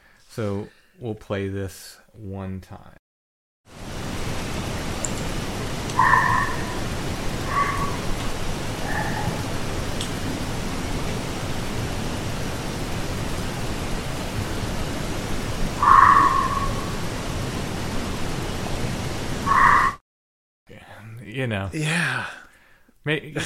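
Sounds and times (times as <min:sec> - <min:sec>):
speech: 0:00.4 - 0:03.0, 0:21.3 - 0:22.4, 0:23.0 - 0:23.4
constant rain-like hiss: 0:03.7 - 0:20.0
distant fox or coyote barks echoing: 0:06.0 - 0:08.1, 0:08.8 - 0:09.6, 0:15.8 - 0:17.0, 0:19.4 - 0:20.0.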